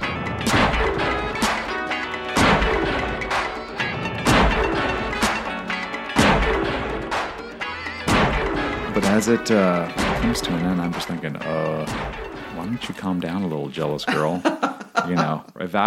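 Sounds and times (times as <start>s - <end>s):
sustained musical tones: 0.0s - 15.4s
explosive percussive drum hits in a song ending: 0.4s - 1.6s, 2.4s - 3.4s, 4.2s - 5.1s, 6.2s - 7.0s, 8.0s - 9.3s, 9.9s - 11.0s, 11.8s - 12.7s
speech: 9.0s - 15.8s
laughter: 13.9s - 15.6s.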